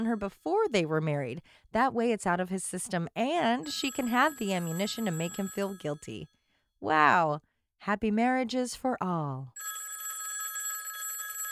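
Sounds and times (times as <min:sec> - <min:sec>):
speech: 0:00.0 - 0:09.8
telephone ringing at a catering business: 0:03.6 - 0:06.3, 0:09.6 - 0:11.5.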